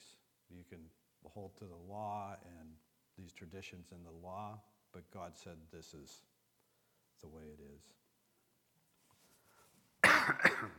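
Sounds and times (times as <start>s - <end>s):
speech: 0.7s - 6.3s, 7.2s - 8.0s, 10.3s - 10.7s
cough from a scratchy throat: 10.0s - 10.7s.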